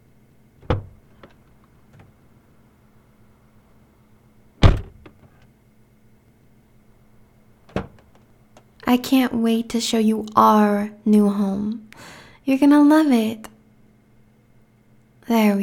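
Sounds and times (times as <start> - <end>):
low steady hum: 0.0 - 15.6
car door latch clunk: 0.6 - 2.1, 4.6 - 5.3, 7.7 - 8.2
solid thunks: 0.6 - 2.2, 4.6 - 5.4, 7.6 - 8.2
speech: 8.9 - 13.5, 15.3 - 15.6.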